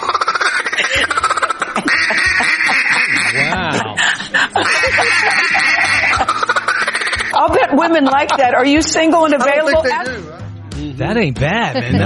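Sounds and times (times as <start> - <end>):
man doing a raspy duck call imitation: 0.0 - 4.0, 4.6 - 7.4, 11.5 - 12.0
laughter: 0.0 - 10.2, 11.5 - 12.0
speech: 7.8 - 10.4, 11.0 - 12.0.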